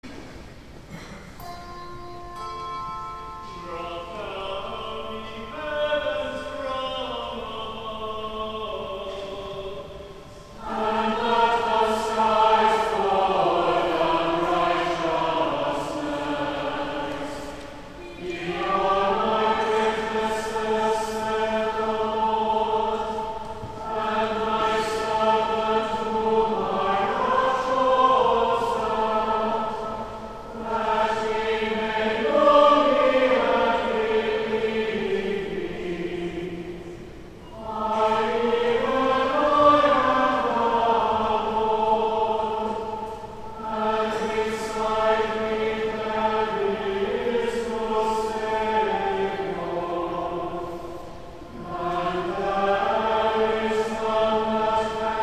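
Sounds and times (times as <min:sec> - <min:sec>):
antiphon and prose plainsong chant in a cathedral: 0:00.0 - 0:55.2.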